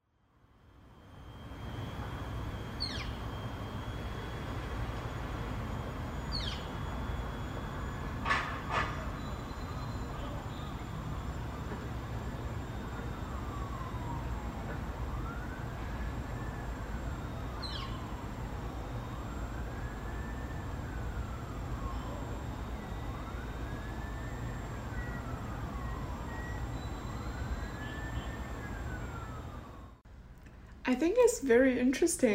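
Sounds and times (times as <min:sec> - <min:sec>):
street and traffic noise: 0:00.4 - 0:32.3
ambulance or police car siren wailing: 0:00.5 - 0:30.0
high chirp: 0:02.6 - 0:03.4, 0:06.2 - 0:06.9
speech: 0:30.9 - 0:32.3.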